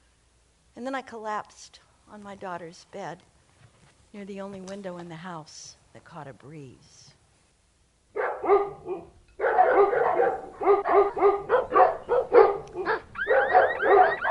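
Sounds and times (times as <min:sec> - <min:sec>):
speech: 0:00.8 - 0:03.3, 0:04.1 - 0:07.1
several agitated dogs barking and yelping: 0:08.2 - 0:14.2
high-pitched dog yips: 0:11.5 - 0:14.2.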